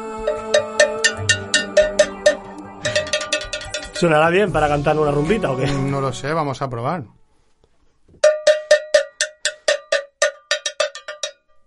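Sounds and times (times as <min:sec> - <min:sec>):
hand bell being struck: 0:00.2 - 0:04.1, 0:08.2 - 0:11.6
speech: 0:04.0 - 0:07.2.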